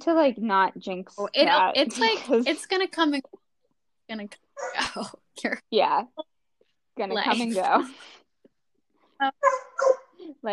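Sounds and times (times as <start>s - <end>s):
speech: 0.0s - 3.4s, 4.1s - 6.3s, 7.0s - 8.2s, 9.2s - 10.5s
dog barking and yelping: 9.4s - 10.2s.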